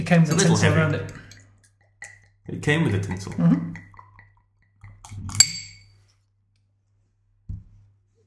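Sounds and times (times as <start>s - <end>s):
speech: 0.0s - 1.2s, 2.5s - 3.8s
glass clinking: 0.2s - 6.0s.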